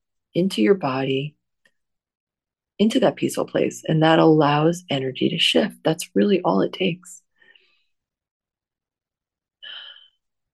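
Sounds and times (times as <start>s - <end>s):
speech: 0.4s - 1.4s, 2.8s - 7.2s
slow deep breath: 9.6s - 10.3s.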